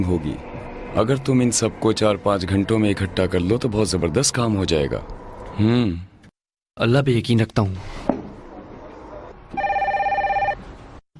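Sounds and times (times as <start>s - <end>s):
speech: 0.0s - 6.1s, 6.8s - 8.0s
telephone ringing with electronic trill: 9.6s - 10.7s.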